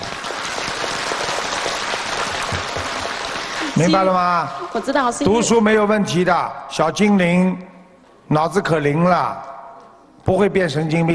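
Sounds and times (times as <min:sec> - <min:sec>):
audience applause: 0:00.0 - 0:05.1
speech: 0:03.8 - 0:07.7, 0:08.3 - 0:09.5, 0:10.2 - 0:11.1.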